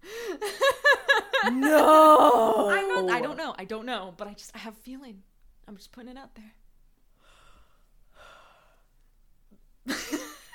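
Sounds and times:
laughter: 0:00.5 - 0:03.4
speech: 0:01.4 - 0:06.6
person giving a sad yawn: 0:01.6 - 0:03.3.

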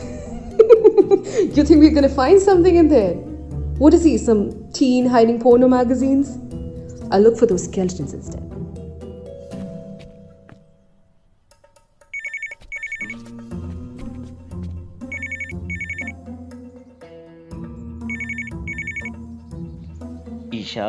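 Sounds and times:
music: 0:00.0 - 0:20.8
speech: 0:01.5 - 0:06.4, 0:07.1 - 0:08.6
telephone ringing with electronic trills: 0:12.2 - 0:13.2, 0:15.1 - 0:16.1, 0:18.1 - 0:19.1.

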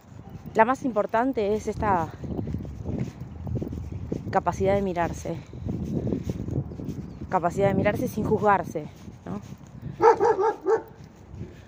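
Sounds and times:
speech: 0:00.6 - 0:02.3, 0:04.3 - 0:06.3, 0:07.3 - 0:09.5
small dog high-pitched barking: 0:10.0 - 0:11.0.

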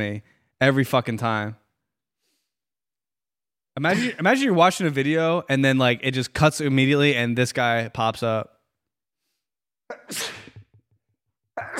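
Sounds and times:
speech: 0:00.0 - 0:01.6, 0:03.8 - 0:08.6, 0:09.9 - 0:10.4
sneeze: 0:09.9 - 0:10.7, 0:11.6 - 0:11.7.

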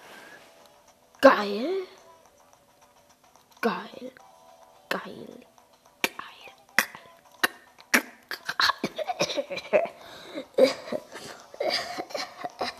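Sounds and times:
speech: 0:01.2 - 0:02.0, 0:03.6 - 0:04.3, 0:05.0 - 0:05.5, 0:09.4 - 0:11.0
person fake coughing in forced bursts: 0:06.8 - 0:12.7.

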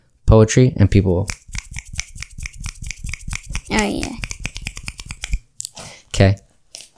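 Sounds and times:
speech: 0:00.3 - 0:01.4, 0:03.8 - 0:04.2, 0:06.2 - 0:06.4
group finger snapping in appreciation: 0:01.2 - 0:05.4.

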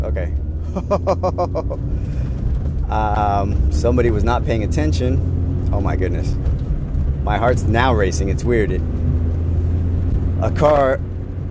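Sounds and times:
car driving at highway speed heard from inside the vehicle: 0:00.0 - 0:11.4
speech: 0:00.2 - 0:01.9, 0:02.9 - 0:06.6, 0:07.2 - 0:09.1, 0:10.4 - 0:11.1
person's voice: 0:02.9 - 0:06.4, 0:07.3 - 0:08.8, 0:10.4 - 0:11.0.

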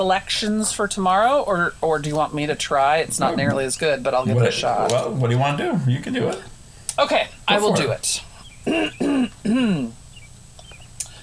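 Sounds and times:
speech: 0:00.0 - 0:10.0
person clearing throat: 0:03.1 - 0:03.6, 0:08.7 - 0:10.0.

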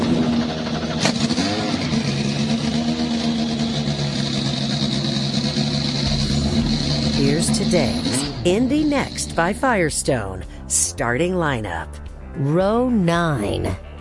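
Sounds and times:
several Indy NXT race car engines starting and revving: 0:00.0 - 0:10.2
speech: 0:07.4 - 0:13.9.

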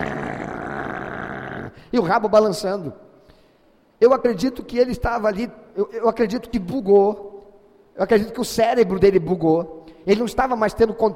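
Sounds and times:
person imitating a dog growling: 0:00.0 - 0:01.9
speech: 0:01.9 - 0:03.0, 0:04.0 - 0:07.3, 0:08.0 - 0:11.1.

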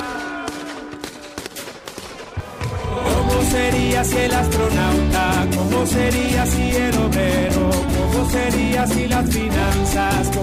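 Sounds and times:
gunshots: 0:00.0 - 0:03.1
sustained musical backdrop with steady tones: 0:03.1 - 0:10.4
speech: 0:03.6 - 0:10.4.

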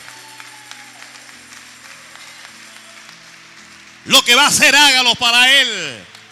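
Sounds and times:
audience applauding: 0:00.0 - 0:06.3
speech: 0:04.0 - 0:06.1.

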